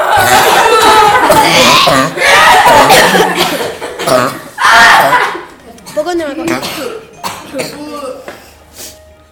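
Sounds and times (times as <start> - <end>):
audience members chuckling: 0.0 - 5.5
live audience members coughing: 0.1 - 7.8.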